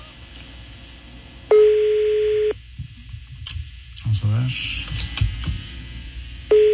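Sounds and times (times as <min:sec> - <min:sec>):
telephone ringback tone from an outgoing phone call: 0:01.5 - 0:02.5, 0:06.5 - 0:06.7
speech: 0:04.3 - 0:05.0.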